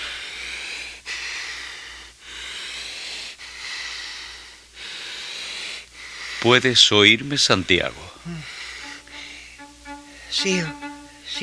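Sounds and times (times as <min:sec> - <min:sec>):
deep breathing from a patient being examined by a doctor: 0:00.0 - 0:06.4, 0:08.1 - 0:09.6
speech: 0:06.4 - 0:08.5, 0:10.3 - 0:11.4.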